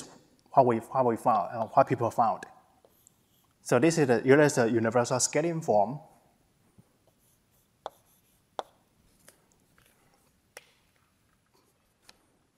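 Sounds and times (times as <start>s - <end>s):
speech: 0.6s - 2.5s, 3.6s - 6.1s
pen scratching while writing notes by hand: 1.2s - 2.2s, 2.8s - 3.6s, 7.0s - 9.3s
light pen taps: 8.6s - 8.8s.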